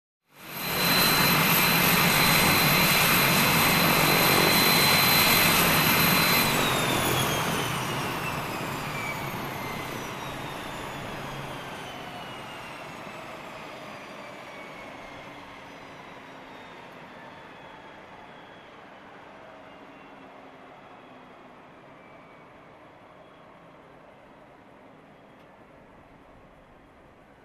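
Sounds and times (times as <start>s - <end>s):
aircraft propeller toned down: 0.4s - 18.6s.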